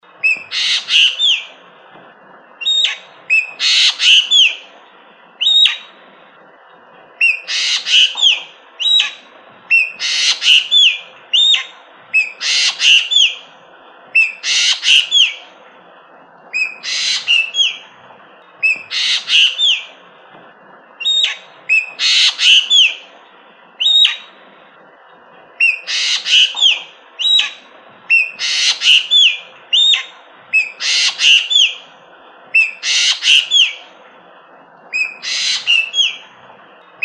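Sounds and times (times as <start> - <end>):
ekek geling bird call variation: 0.2 - 1.6, 2.6 - 4.7, 5.4 - 6.0, 7.2 - 13.5, 14.1 - 15.5, 16.5 - 18.0, 18.6 - 20.0, 21.0 - 23.1, 23.8 - 24.3, 25.6 - 31.9, 32.5 - 33.9, 34.9 - 36.3.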